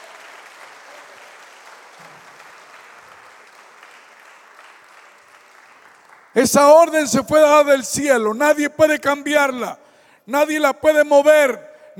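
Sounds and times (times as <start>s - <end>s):
church congregation applauding loudly: 0.0s - 6.4s
speech: 6.4s - 11.9s.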